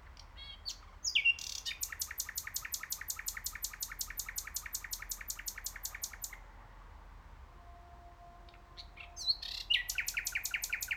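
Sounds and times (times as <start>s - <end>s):
common nightingale song of slurred whistles and repeated chopped notes: 0.3s - 6.4s, 8.8s - 10.9s.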